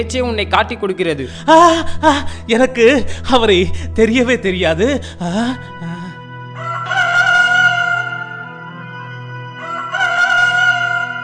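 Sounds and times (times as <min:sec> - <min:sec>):
speech: 0:00.0 - 0:06.0
rooster crowing: 0:06.6 - 0:08.4, 0:09.6 - 0:11.2.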